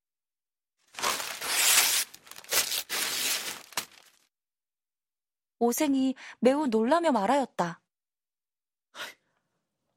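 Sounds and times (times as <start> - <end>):
hanging paper scroll being pulled down and ripped apart: 0.9 - 4.2
speech: 5.6 - 7.8.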